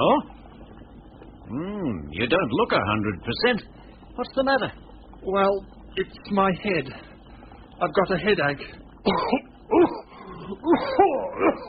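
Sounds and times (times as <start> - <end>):
speech: 1.5 - 7.1, 7.8 - 9.4, 10.5 - 11.6
person with a cold coughing throatily: 9.1 - 11.6.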